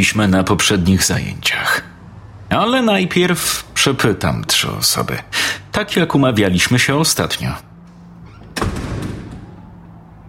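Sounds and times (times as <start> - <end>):
speech: 0.0 - 1.9, 2.5 - 7.7
math classroom door swinging open with a solid thud: 7.9 - 10.0.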